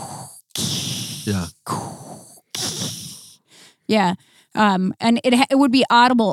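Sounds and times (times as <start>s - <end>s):
person imitating heavy mechanical respirator breathing: 0.0s - 4.5s
speech: 1.3s - 1.8s, 3.9s - 6.3s.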